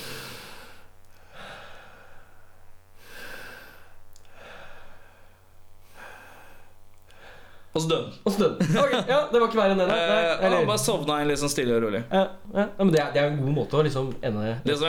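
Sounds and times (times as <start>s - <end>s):
person taking long slow deep breaths: 0.0s - 7.7s
faint steady hum: 0.0s - 14.8s
speech: 7.8s - 14.8s
laughter: 8.3s - 11.0s.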